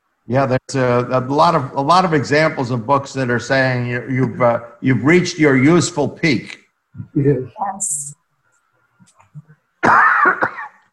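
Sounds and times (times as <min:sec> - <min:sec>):
speech: 0:00.3 - 0:08.2, 0:09.8 - 0:10.4
harsh raspy allergy cough: 0:09.8 - 0:10.9.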